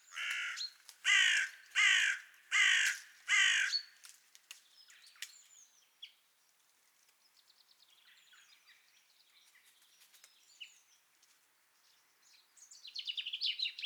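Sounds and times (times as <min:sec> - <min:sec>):
carrion crow Corvus corone giving harsh caws: 0:00.1 - 0:03.9.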